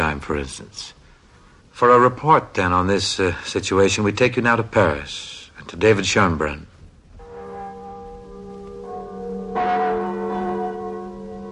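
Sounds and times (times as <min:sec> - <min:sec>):
speech: 0:00.2 - 0:01.0, 0:01.8 - 0:06.7
Notre Dame church bells chiming and tolling: 0:07.2 - 0:11.4.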